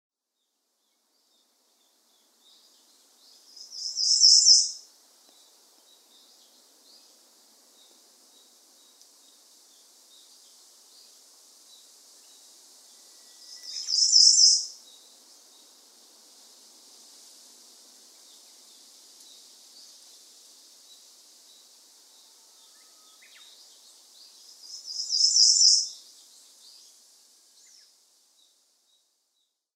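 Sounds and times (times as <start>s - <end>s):
Ijima's leaf warbler on Miyake: 0.9s - 21.8s, 22.7s - 29.0s.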